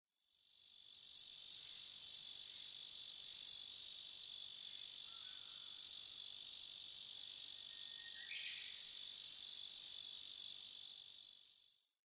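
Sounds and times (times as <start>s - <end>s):
Tibicen japonicus cicada singing by the Inari River in Nikko: 0.3s - 11.8s.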